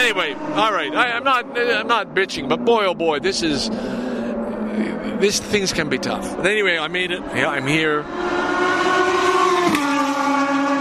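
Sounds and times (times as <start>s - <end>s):
race car engines on a racetrack straightaway: 0.0s - 10.7s
speech: 0.1s - 4.1s, 4.8s - 9.2s.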